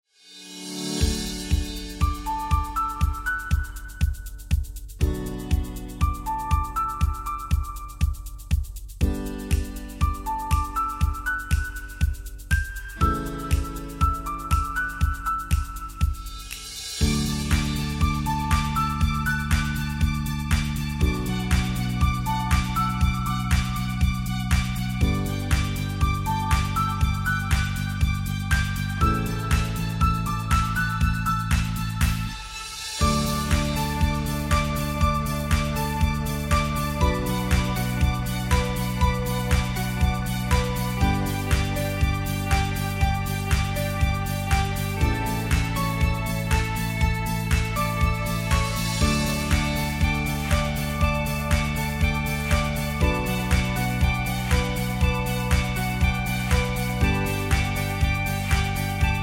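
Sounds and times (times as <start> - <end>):
piano: 0.1 - 59.2.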